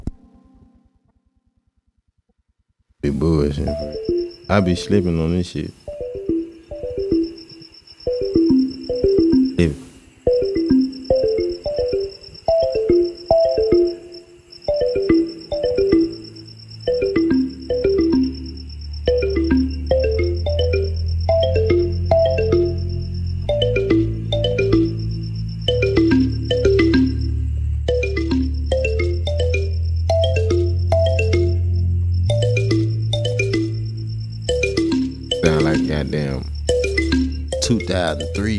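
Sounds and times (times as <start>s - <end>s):
speech: 3.1s - 5.8s
phone musical ringtone with bass line: 3.5s - 5.3s, 5.9s - 38.5s.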